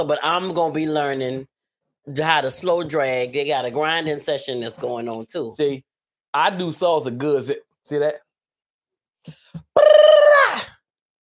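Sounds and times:
speech: 0.0s - 1.5s, 2.1s - 8.2s, 9.2s - 10.7s
rolling tongue trill: 9.6s - 10.4s.

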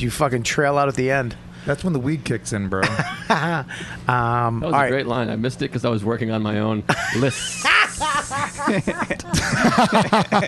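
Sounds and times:
speech: 0.0s - 10.4s
person chuckling: 6.9s - 10.4s
person hissing in a garden snake impression: 7.7s - 8.8s.

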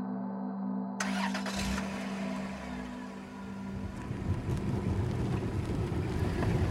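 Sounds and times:
car engine cranking and starting: 1.0s - 6.6s
wind buffeting: 2.4s - 6.6s.

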